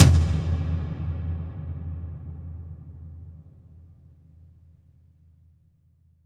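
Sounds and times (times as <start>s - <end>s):
cinematic tom drum impact: 0.0s - 3.8s.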